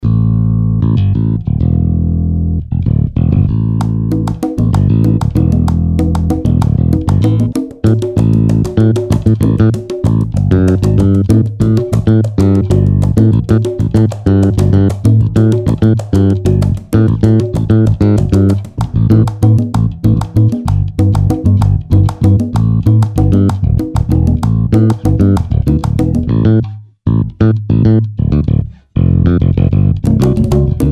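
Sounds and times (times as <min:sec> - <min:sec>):
Persian 6/8 electric bass: 0:00.0 - 0:30.9.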